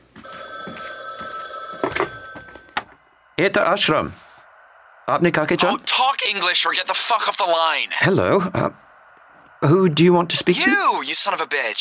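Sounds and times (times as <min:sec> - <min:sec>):
telephone bell ringing: 0:00.2 - 0:03.4
speech: 0:03.4 - 0:04.2, 0:05.1 - 0:08.8, 0:09.6 - 0:11.8.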